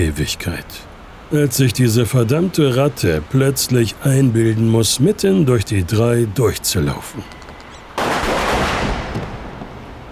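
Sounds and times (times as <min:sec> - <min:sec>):
speech: 0:00.1 - 0:07.4
gunfire echoing in a concrete parking garage: 0:08.0 - 0:10.0.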